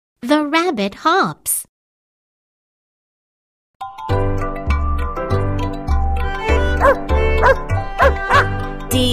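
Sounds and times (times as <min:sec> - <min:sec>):
speech: 0:00.2 - 0:01.6, 0:08.9 - 0:09.1
bright bouncy musical backing with tinkling tones: 0:03.8 - 0:09.1
dog barking: 0:06.8 - 0:08.5.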